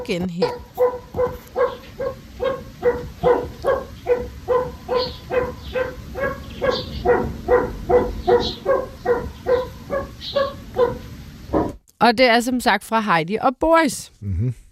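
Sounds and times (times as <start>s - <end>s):
speech: 0.0s - 1.4s, 12.0s - 14.6s
pheasant calling: 0.4s - 11.8s.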